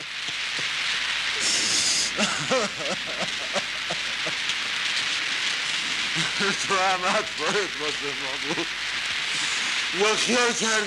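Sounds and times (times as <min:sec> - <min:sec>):
steady rain: 0:00.0 - 0:10.8
person making strained sobbing vocal sounds: 0:01.8 - 0:04.3
laughter: 0:02.1 - 0:04.5, 0:06.2 - 0:08.7
speech: 0:02.2 - 0:04.0, 0:06.2 - 0:08.8, 0:09.9 - 0:10.8.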